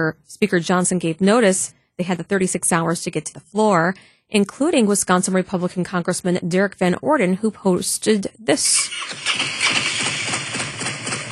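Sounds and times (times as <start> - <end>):
speech: 0.0 - 9.8
Harley motorcycle engine rumbling: 8.7 - 11.3.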